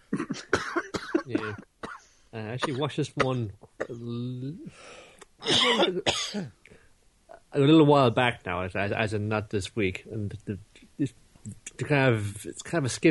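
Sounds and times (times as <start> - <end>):
person coughing harshly: 0.0 - 2.0, 2.6 - 4.2, 5.4 - 6.5
speech: 1.3 - 1.7, 2.4 - 6.6, 7.5 - 13.0.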